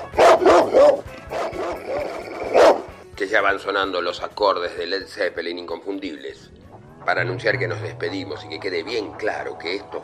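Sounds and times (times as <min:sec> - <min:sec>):
dog barking: 0:00.0 - 0:03.0
speech: 0:03.2 - 0:10.0.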